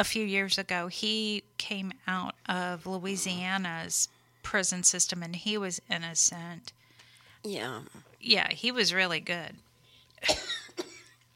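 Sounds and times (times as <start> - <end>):
speech: 0.0 - 6.8, 7.4 - 10.9
harsh raspy coughs: 10.2 - 11.2.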